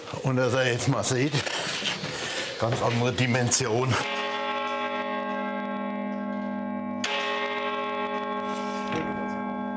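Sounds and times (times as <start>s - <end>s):
speech: 0.3s - 1.8s, 2.6s - 4.1s
carillon of 47 bells of a collegiate church in Kaiserslautern ringing: 4.0s - 9.7s.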